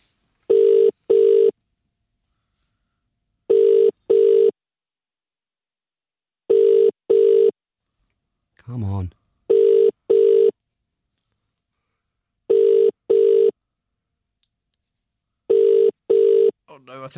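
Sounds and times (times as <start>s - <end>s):
phone ringback tone in double pulses: 0.5s - 1.6s, 3.5s - 4.6s, 6.5s - 7.6s, 9.5s - 10.6s, 12.5s - 13.6s, 15.5s - 16.6s
speech: 8.8s - 9.2s, 16.9s - 17.1s.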